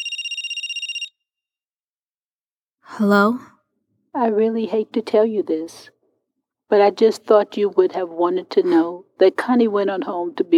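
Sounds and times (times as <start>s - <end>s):
home telephone ringing with electronic warble: 0.0s - 1.2s
speech: 2.9s - 3.5s, 4.2s - 6.0s, 6.7s - 10.5s.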